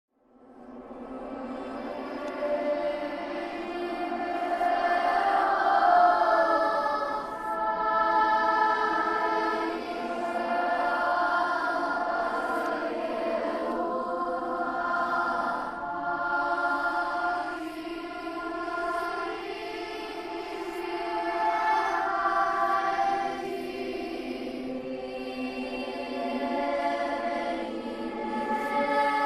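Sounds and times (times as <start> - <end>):
creepy possessed children singing horror sounds: 0.2 - 29.2.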